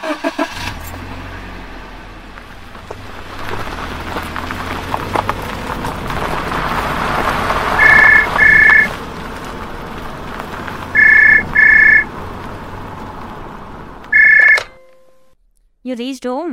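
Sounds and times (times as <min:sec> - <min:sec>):
steady low rumble of a car: 0:00.0 - 0:15.6
car reversing beeps while being parked: 0:07.8 - 0:08.9, 0:11.0 - 0:12.1, 0:14.1 - 0:14.7
speech: 0:15.9 - 0:16.5.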